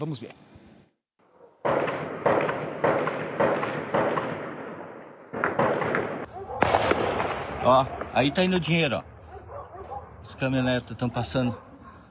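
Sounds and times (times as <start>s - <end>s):
speech: 0.0s - 0.5s, 7.6s - 9.1s, 10.2s - 11.7s
rifle gunfire: 1.6s - 8.5s
booming explosions: 1.6s - 9.3s.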